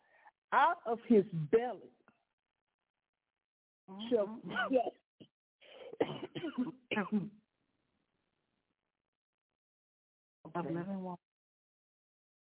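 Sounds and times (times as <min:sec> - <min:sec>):
speech: 0:00.5 - 0:02.0, 0:03.9 - 0:05.0, 0:05.9 - 0:07.4, 0:10.4 - 0:11.3
man coughing during a sermon: 0:05.7 - 0:07.3
man clearing throat: 0:05.7 - 0:07.4.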